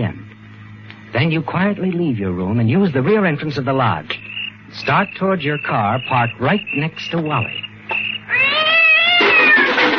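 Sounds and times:
speech: 0:01.2 - 0:07.6
cat yowling in the night: 0:08.2 - 0:09.9.

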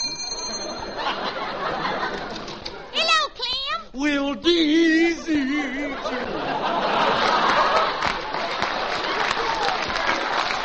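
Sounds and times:
brief high doorbell ringing: 0:00.0 - 0:01.5
laughter: 0:00.6 - 0:02.9, 0:05.0 - 0:10.6
speech: 0:04.0 - 0:07.4.

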